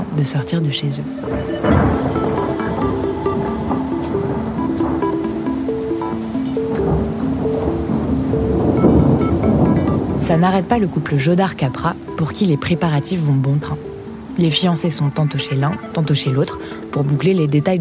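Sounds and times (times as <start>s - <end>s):
heavy rain pouring during a storm at Fréjus: 0.0s - 17.7s
soft melodic line: 0.0s - 17.7s
speech: 0.2s - 2.1s, 10.3s - 17.7s
deep rolling thunder: 1.2s - 12.4s.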